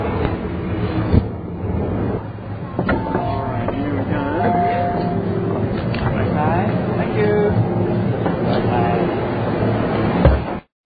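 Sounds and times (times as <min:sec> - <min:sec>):
metro train rumble in Hong Kong while changing trains onto the TKO line: 0:00.0 - 0:10.6
crowd murmuring: 0:02.7 - 0:09.1
chime-like tones: 0:03.0 - 0:05.4.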